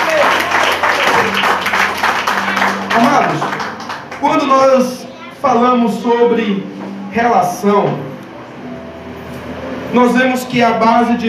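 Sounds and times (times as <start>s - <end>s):
audience applause: 0.0s - 4.5s
speech: 4.4s - 8.1s, 9.9s - 11.2s.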